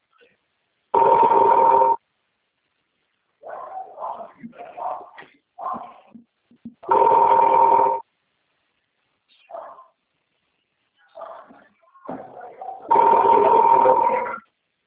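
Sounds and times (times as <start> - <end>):
phone ringing unanswered: 1.0 - 2.0, 6.9 - 8.0, 12.9 - 14.4.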